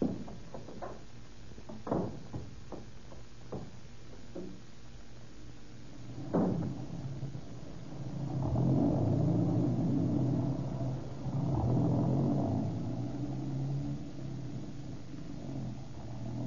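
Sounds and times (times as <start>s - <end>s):
car engine rumbling: 5.9s - 16.4s.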